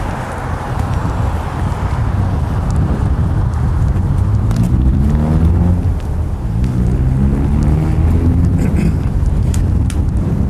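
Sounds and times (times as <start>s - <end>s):
street traffic rumble: 0.0s - 10.4s
vehicles passing: 0.0s - 10.4s
wind buffeting the microphone: 0.0s - 10.4s.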